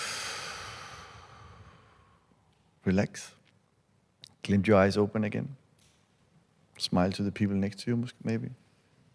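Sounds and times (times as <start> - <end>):
group of people exhaling slowly during a breathing exercise: 0.0 - 2.3
speech: 2.9 - 3.4, 4.5 - 5.6, 6.8 - 8.6.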